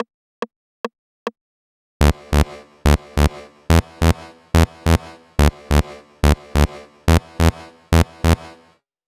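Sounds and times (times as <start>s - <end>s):
bass bridge at 142 BPM: 2.0s - 8.6s.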